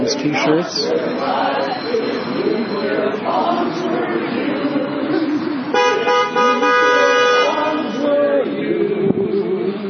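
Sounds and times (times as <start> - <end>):
busy street traffic: 0.0 - 9.8
murmuring crowd voices: 0.0 - 9.8
speech: 0.1 - 3.7
car horns honking over busy street traffic: 5.7 - 8.1.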